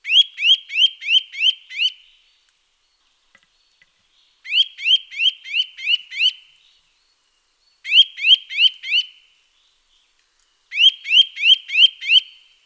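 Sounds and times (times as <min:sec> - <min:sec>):
Eurasian nuthatch calling: 0:00.0 - 0:02.1, 0:04.5 - 0:06.4, 0:07.8 - 0:09.2, 0:10.7 - 0:12.5.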